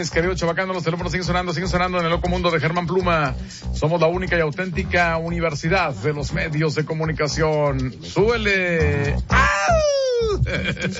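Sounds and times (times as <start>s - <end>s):
speech: 0.0s - 10.9s
voice imitating a pop singer's signature scream: 8.8s - 10.5s
short vocal bursts: 8.8s - 10.6s.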